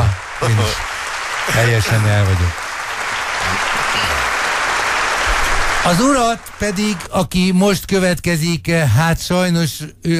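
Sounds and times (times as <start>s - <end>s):
audience applause for a guest at the end of an interview: 0.0s - 7.4s
speech: 0.4s - 2.6s, 5.8s - 10.1s.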